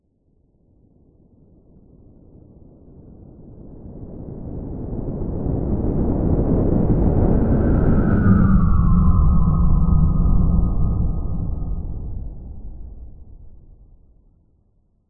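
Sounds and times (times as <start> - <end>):
large science fiction mothership spacecraft electric whistle hum flying overhead: 5.6 - 14.2.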